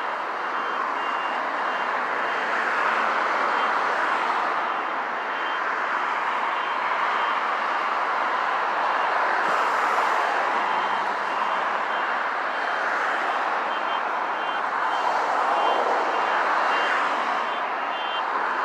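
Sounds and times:
repeated beeping alarm: 0.0 - 3.8, 4.6 - 5.7, 6.4 - 7.4, 10.4 - 18.6
loud dense wash of broadband noise: 0.0 - 18.6.

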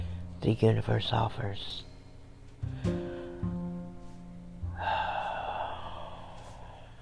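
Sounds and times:
gentle sustained musical tones: 0.0 - 5.7
speech: 0.4 - 1.9
deep breath in during a guided meditation: 2.6 - 3.6, 4.7 - 7.0.

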